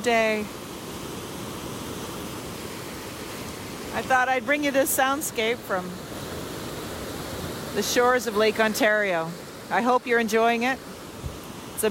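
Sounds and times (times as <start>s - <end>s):
speech: 0.0s - 0.6s, 4.0s - 6.1s, 7.8s - 10.9s
large lake waves crashing on breakwater: 0.0s - 11.9s.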